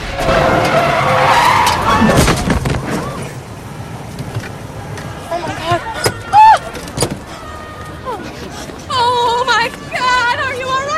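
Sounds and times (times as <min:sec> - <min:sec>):
squeals and knocks: 0:00.0 - 0:03.3
car tires screeching and skidding: 0:00.0 - 0:10.8.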